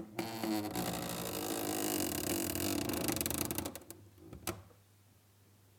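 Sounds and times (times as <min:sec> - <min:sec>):
cupboard squeaking: 0:00.2 - 0:04.5.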